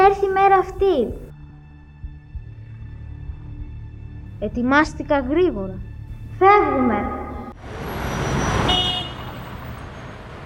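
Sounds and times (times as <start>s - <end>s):
speech: 0.1s - 1.3s, 4.4s - 7.9s
busy road traffic roar: 6.4s - 10.4s
car horn honking: 6.6s - 9.6s.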